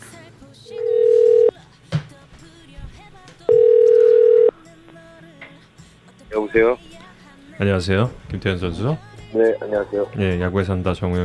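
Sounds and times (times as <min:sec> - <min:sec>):
telephone ringback tone: 0:00.7 - 0:01.5, 0:03.5 - 0:04.6
speech: 0:06.5 - 0:06.9, 0:07.6 - 0:11.2.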